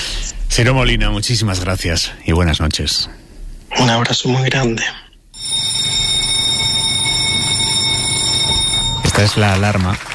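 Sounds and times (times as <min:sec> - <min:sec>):
speech: 0:00.6 - 0:03.2, 0:03.8 - 0:05.0, 0:09.2 - 0:10.1
ringing electronic newsroom meeting alarm tone: 0:05.4 - 0:09.5.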